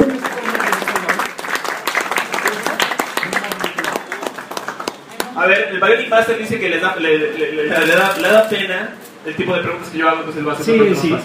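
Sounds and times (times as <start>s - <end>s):
audience applause at a live comic-book chat event: 0.0s - 5.4s
speech: 5.8s - 11.2s.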